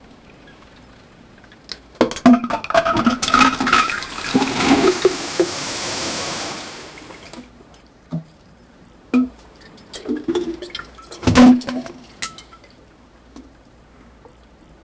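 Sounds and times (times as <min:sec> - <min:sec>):
trash plastic bottles being dumped: 0:02.0 - 0:07.5, 0:10.1 - 0:12.1.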